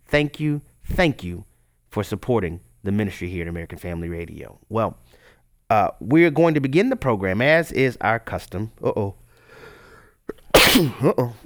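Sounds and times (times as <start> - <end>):
speech: 0.1 - 9.2, 10.7 - 11.4
sharp intake of breath: 9.4 - 11.0
person sneezing: 10.3 - 11.1.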